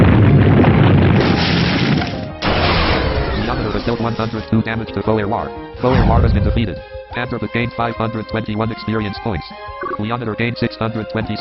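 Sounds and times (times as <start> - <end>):
video game earthquake attack rumbling roar in a turn-based battle: 0.0 - 3.6, 5.8 - 7.0
speech: 3.9 - 11.4.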